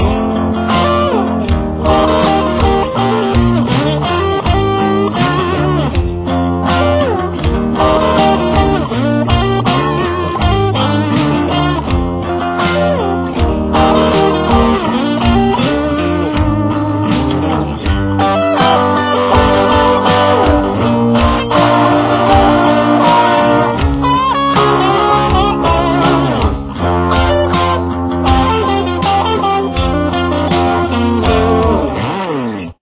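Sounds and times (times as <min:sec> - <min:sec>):
complete solo guitar piece: 0:00.0 - 0:32.7.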